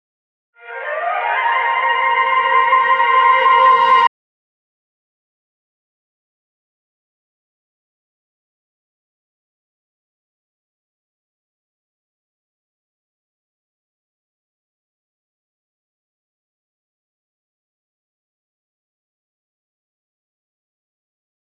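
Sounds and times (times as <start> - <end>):
orchestra playing: 0.6 - 4.1.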